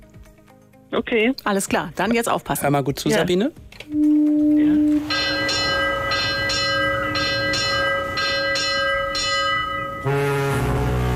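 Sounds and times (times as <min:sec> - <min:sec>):
speech: 0:00.9 - 0:04.5
ship's bell ringing as a ship departs during a sailing festival: 0:04.0 - 0:11.0
low sustained tone: 0:04.0 - 0:11.1.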